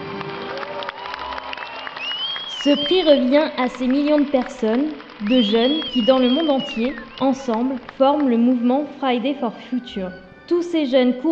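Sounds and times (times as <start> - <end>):
audience clapping at an awards ceremony: 0.0 - 8.7
speech: 2.6 - 11.3.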